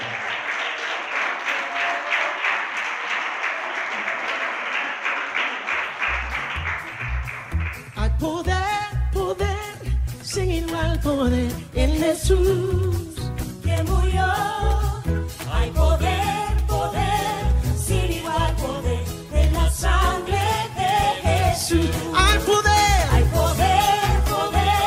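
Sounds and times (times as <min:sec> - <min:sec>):
large crowd applauding: 0:00.0 - 0:08.2, 0:18.0 - 0:24.8
music with bass notes and instruments: 0:06.2 - 0:24.8
singing: 0:08.0 - 0:24.8
speech: 0:11.0 - 0:13.1.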